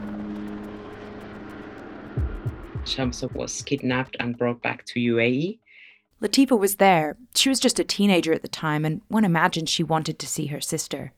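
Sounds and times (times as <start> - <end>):
airplane engine drone from a plane flying to Dubai: 0.0 - 3.7
brief loud low thump: 2.2 - 3.7
speech: 2.8 - 5.6, 6.2 - 11.1.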